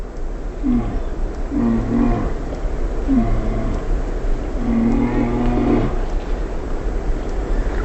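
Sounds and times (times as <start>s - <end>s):
continuous low rumbling noise: 0.0s - 7.7s
mammal giving deep throaty guttural calls in Katmai Alaska: 0.6s - 6.2s.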